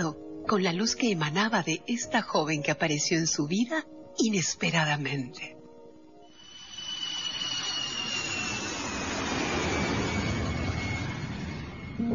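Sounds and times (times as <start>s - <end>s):
speech: 0.0s - 5.6s
thin high whine gliding downward in pitch: 6.2s - 12.1s
jet airplane flying through the air toward an airport: 6.3s - 12.1s.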